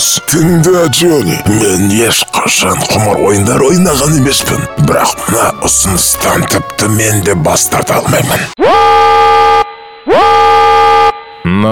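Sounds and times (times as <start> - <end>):
speech: 0.2 - 10.6, 11.4 - 11.7
fire alarm horn in a building: 8.6 - 11.7.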